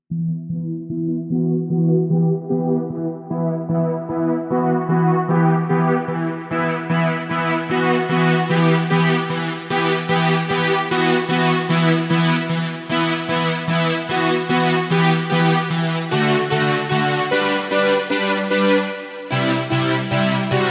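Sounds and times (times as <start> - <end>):
vintage Roland SRX synth keyboards: 0.0 - 20.6.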